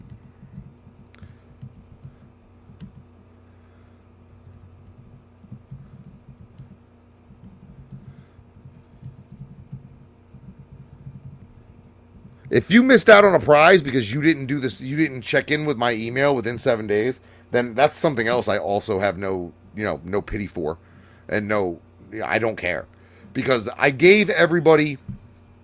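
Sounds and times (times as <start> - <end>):
computer keyboard typing: 0.0 - 3.2, 4.4 - 12.6
steady low rumbling hum: 0.0 - 23.9
speech: 12.5 - 25.1.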